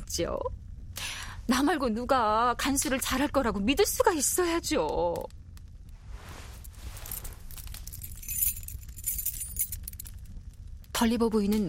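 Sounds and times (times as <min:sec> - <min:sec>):
speech: 0:00.1 - 0:00.6, 0:01.5 - 0:05.4, 0:11.0 - 0:11.6
bunch of keys jangling and clinking: 0:06.9 - 0:10.2.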